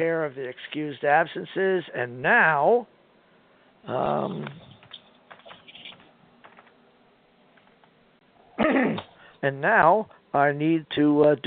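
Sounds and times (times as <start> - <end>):
speech: 0.0 - 3.0, 3.8 - 4.7, 8.6 - 11.4
people coughing during a meeting: 8.6 - 9.1
throat-clearing: 8.6 - 9.2.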